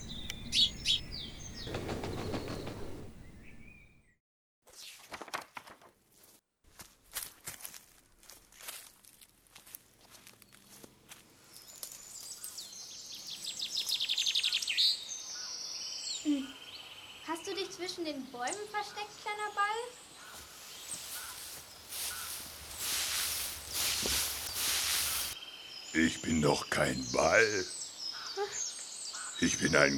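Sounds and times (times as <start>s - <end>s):
birds chirping and singing: 0.0s - 4.1s, 11.5s - 29.9s
footsteps crunching on a path: 6.1s - 12.8s, 20.2s - 25.4s
speech: 18.0s - 20.0s, 26.0s - 27.8s, 29.4s - 29.9s.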